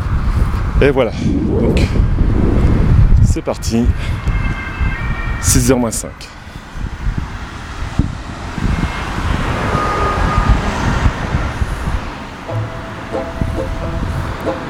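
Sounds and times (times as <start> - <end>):
wind buffeting the microphone: 0.0 - 5.4, 6.4 - 12.3
speech: 0.8 - 2.7, 3.3 - 4.3, 5.4 - 6.4
cars driving onto expressway ramp toward Lorient: 7.6 - 14.6.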